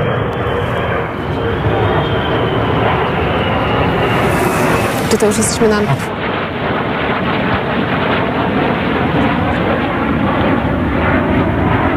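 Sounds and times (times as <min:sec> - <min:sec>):
F-35 fighter jets flying overhead: 0:00.0 - 0:11.9
wind buffeting: 0:00.4 - 0:06.4
speech: 0:05.1 - 0:06.2.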